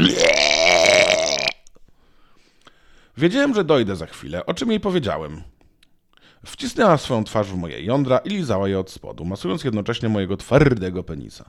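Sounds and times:
person imitating a choking gag: 0.0 - 1.7
speech: 3.2 - 5.6, 6.4 - 11.4.

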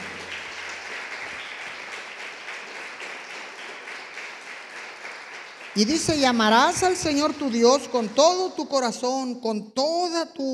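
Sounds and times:
large crowd applauding: 0.0 - 8.5
speech: 5.8 - 10.5.

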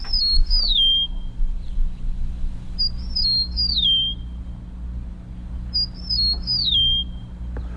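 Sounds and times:
eastern meadowlark singing: 0.0 - 1.8, 2.8 - 4.4, 5.7 - 7.7
low rumble: 0.0 - 7.7.

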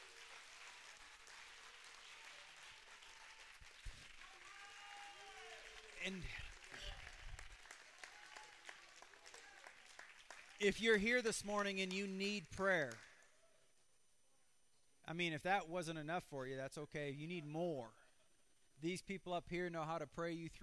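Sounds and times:
cheers: 0.0 - 10.6
audience clapping hands in dense applause: 0.0 - 10.7
speech: 6.0 - 6.5, 10.6 - 13.1, 15.1 - 18.0, 18.8 - 20.6.

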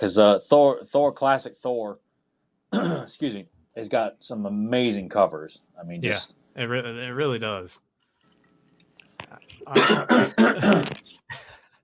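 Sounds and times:
speech: 0.0 - 2.0, 2.7 - 7.9, 9.4 - 11.5
person clearing throat: 2.8 - 3.2, 9.3 - 11.0
person coughing: 2.8 - 3.2, 9.6 - 11.0.

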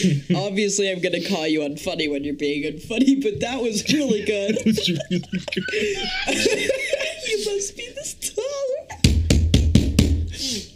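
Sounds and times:
speech: 0.0 - 8.4
laughter: 3.0 - 7.8
firm knocking on a door: 9.0 - 10.3.

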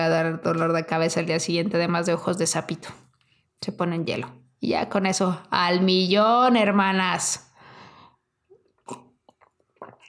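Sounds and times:
speech: 0.0 - 7.5
person sipping lemon tea: 8.4 - 10.0
quiet swallowing gulps: 8.4 - 10.0.

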